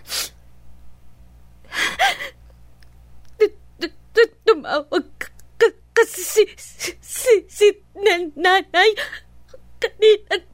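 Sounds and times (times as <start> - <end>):
person crying with shaky breathy sobs: 1.6 - 2.5, 3.4 - 10.5.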